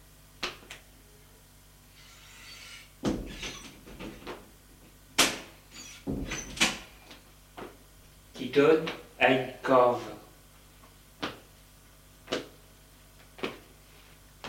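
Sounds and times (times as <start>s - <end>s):
door opening in a run-down dirty building at end of an alley: 3.0s - 4.4s, 5.7s - 6.8s
speech: 8.5s - 10.1s.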